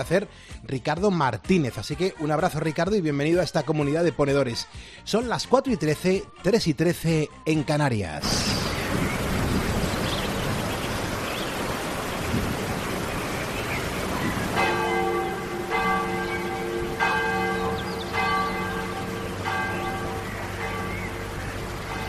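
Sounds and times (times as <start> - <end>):
speech: 0.0 - 9.0
hiss: 8.2 - 22.0
noisy rain-like ambience: 8.2 - 22.0
church bells ringing in a peal in Altso: 14.5 - 22.0.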